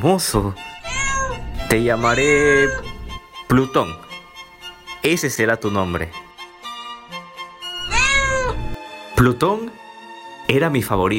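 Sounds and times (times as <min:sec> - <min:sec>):
speech: 0:00.0 - 0:00.8, 0:01.7 - 0:02.9, 0:03.5 - 0:04.0, 0:05.0 - 0:06.2, 0:09.2 - 0:09.8, 0:10.5 - 0:11.1
cat meowing: 0:00.8 - 0:03.2, 0:07.8 - 0:08.8.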